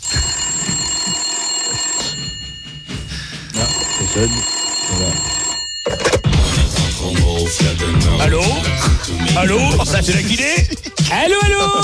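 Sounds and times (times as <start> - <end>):
electronic bell-like telephone ringing while a call is placed to a physiotherapy service: 0.0 - 6.7
speech: 4.2 - 6.1, 7.1 - 11.8
laughter: 8.3 - 11.2.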